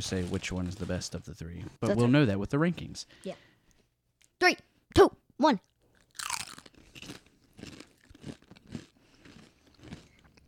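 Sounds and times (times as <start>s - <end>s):
speech: 0.0s - 3.5s, 4.4s - 5.7s
Mexican street corn flavoured tortilla chips being eaten: 6.0s - 10.4s.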